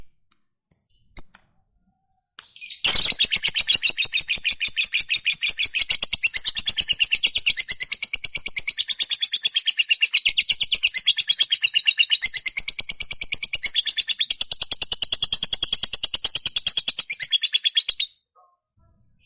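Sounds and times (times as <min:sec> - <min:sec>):
fighter-type lovebird chirping and giving long rapid high chatter: 0:02.8 - 0:18.1.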